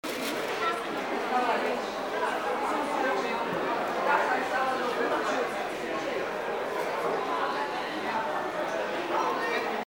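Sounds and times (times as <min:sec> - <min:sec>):
market interior ambience: 0:00.0 - 0:09.8.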